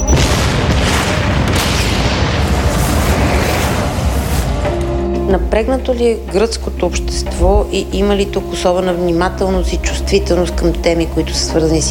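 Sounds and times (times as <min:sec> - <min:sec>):
loud explosion boom with rumbling roar: 0:00.0 - 0:04.7
speech: 0:05.3 - 0:11.8.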